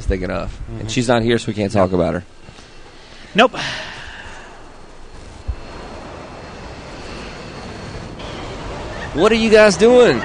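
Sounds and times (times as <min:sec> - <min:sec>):
speech: 0:00.1 - 0:02.6, 0:03.3 - 0:04.0, 0:09.2 - 0:10.2
video game drone flying overhead: 0:02.7 - 0:10.2.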